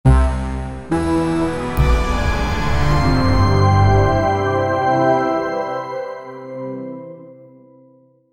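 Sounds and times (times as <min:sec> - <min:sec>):
dramatic introduction music: 0:00.1 - 0:07.0.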